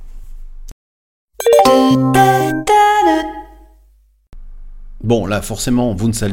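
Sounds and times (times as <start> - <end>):
bright three-note train station announcement chime: 1.4 - 3.4
speech: 1.9 - 2.3, 5.1 - 6.3.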